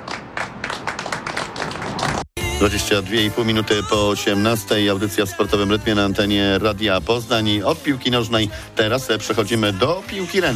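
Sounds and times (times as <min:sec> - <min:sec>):
applause at the unveiling of a mural: 0:00.0 - 0:02.3
speech: 0:02.6 - 0:10.5.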